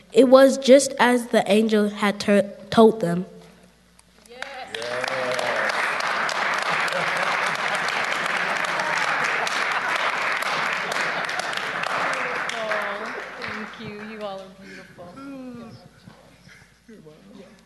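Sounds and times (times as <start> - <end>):
speech: 0.1 - 3.3
audience applauding: 4.4 - 14.6
laughter: 4.8 - 16.0.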